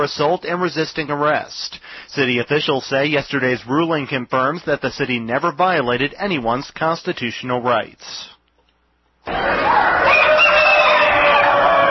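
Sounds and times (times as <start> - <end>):
speech: 0.0 - 8.3, 9.2 - 10.2
rooster crowing: 9.3 - 11.8.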